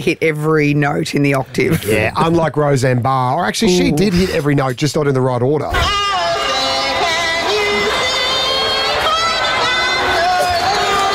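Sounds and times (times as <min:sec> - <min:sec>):
speech: 0:00.0 - 0:06.0
large crowd booing a female singer: 0:05.8 - 0:11.1.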